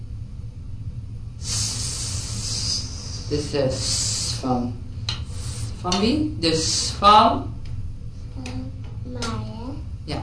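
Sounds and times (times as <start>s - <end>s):
low rumble: 0.0s - 10.2s
voice making a sustained sss hiss imitating a snake: 1.4s - 4.5s, 5.3s - 5.8s
speech: 3.3s - 4.8s, 5.8s - 7.6s.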